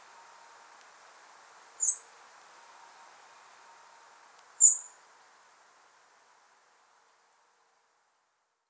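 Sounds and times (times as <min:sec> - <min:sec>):
faint low hiss: 0:00.0 - 0:08.6
European robin Erithacus rubecula calling: 0:01.8 - 0:02.1, 0:04.6 - 0:05.0.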